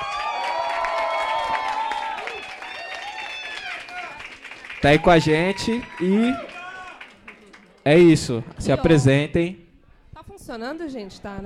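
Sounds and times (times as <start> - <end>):
small group of people cheering and whooping: 0.0 - 7.1
speech: 4.8 - 6.5, 7.9 - 9.6, 10.4 - 11.4.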